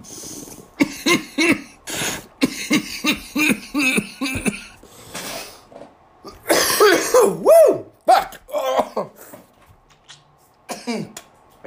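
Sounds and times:
person coughing hard: 0:00.8 - 0:04.8, 0:06.3 - 0:07.4, 0:08.1 - 0:09.3, 0:10.7 - 0:11.2
speech: 0:01.1 - 0:01.6.

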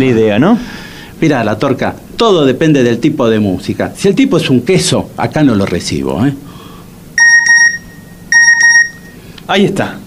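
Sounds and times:
speech: 0:00.0 - 0:06.6, 0:09.5 - 0:10.0
quiet room noise: 0:00.0 - 0:10.0
phone message notification beep: 0:07.2 - 0:09.2.

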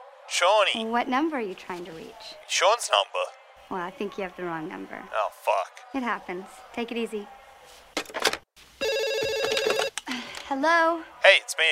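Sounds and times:
speech: 0:00.3 - 0:07.8, 0:10.5 - 0:11.7
telephone ringing with an electronic trill: 0:08.8 - 0:10.0.

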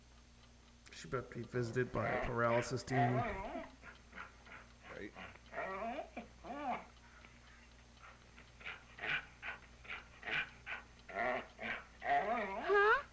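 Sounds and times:
speech: 0:01.0 - 0:03.8, 0:05.0 - 0:05.4
dog whimpering and growling: 0:03.0 - 0:03.8, 0:05.5 - 0:06.9, 0:11.1 - 0:13.1.

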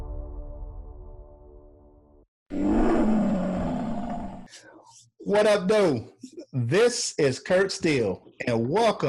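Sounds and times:
lion roaring: 0:02.5 - 0:04.6
speech: 0:05.3 - 0:09.0.

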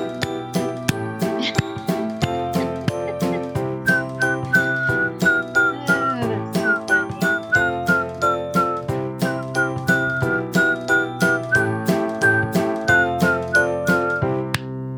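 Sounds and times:
bright whistled melody: 0:00.0 - 0:14.6
driving beat of sharp clap-like hits: 0:00.0 - 0:14.7.

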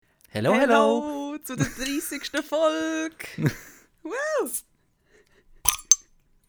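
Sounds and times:
speech: 0:00.4 - 0:04.7
laughter: 0:00.5 - 0:04.6
cork popping from a beer bottle: 0:05.6 - 0:06.1.

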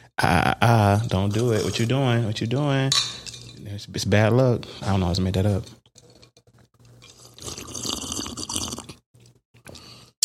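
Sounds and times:
speech: 0:00.2 - 0:03.2, 0:03.8 - 0:05.8
loud slurp of a margarita: 0:07.0 - 0:09.0.

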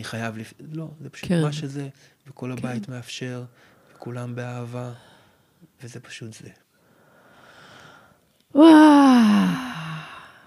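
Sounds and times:
speech: 0:00.0 - 0:05.1, 0:05.7 - 0:06.6, 0:08.5 - 0:09.7
deep breath let out as a voiced sigh: 0:08.6 - 0:10.4.

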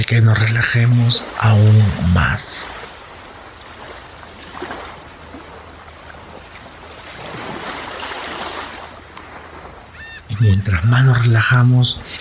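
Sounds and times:
steady low rumble of surf: 0:00.0 - 0:12.1
speech: 0:00.1 - 0:02.8, 0:10.4 - 0:12.1
ocean waves breaking on the shore: 0:00.1 - 0:12.1.

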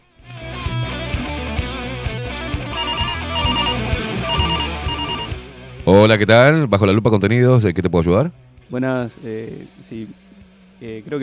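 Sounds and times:
phone ringtone with bright looping electronic melody over a thumping beat: 0:02.7 - 0:05.4
speech: 0:06.0 - 0:10.2, 0:10.8 - 0:11.2.

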